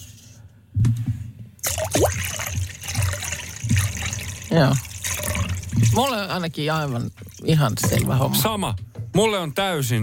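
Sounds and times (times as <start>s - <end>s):
liquid pouring into a glass: 1.6s - 6.4s, 7.0s - 8.3s
speech: 4.5s - 4.9s, 5.9s - 10.0s.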